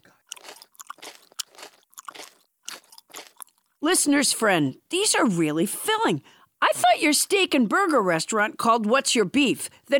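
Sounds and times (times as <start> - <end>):
crunchy chewing of warm mealworms: 0.0 - 3.8
speech: 3.8 - 9.9.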